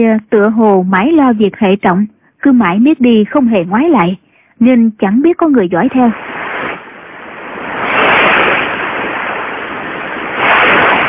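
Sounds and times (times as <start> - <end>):
speech: 0.0 - 6.3
waves crashing against a rocky shore: 6.1 - 11.0.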